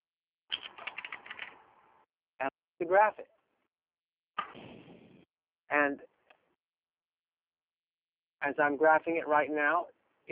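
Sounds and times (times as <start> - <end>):
typing a web address on a computer keyboard: 0.5 - 1.6
speech: 2.4 - 3.4, 5.7 - 6.1, 8.4 - 10.3.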